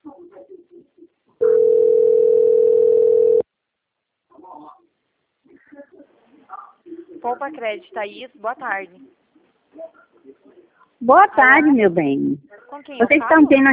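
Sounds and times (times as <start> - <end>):
telephone line tone before a call is answered: 1.4 - 3.4
speech: 7.3 - 9.1, 11.0 - 13.7.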